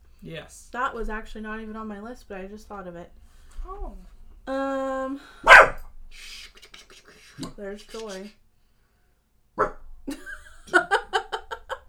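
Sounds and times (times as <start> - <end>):
speech: 0.2 - 6.4, 7.4 - 8.4, 9.6 - 9.8
dog barking: 5.4 - 5.9, 9.6 - 9.8
laughter: 10.1 - 11.8.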